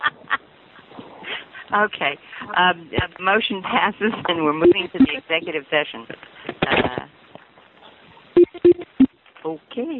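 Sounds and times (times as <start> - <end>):
speech: 1.7 - 7.1, 9.5 - 9.9
short electronic beeps as conference call participants hang up: 8.4 - 9.1.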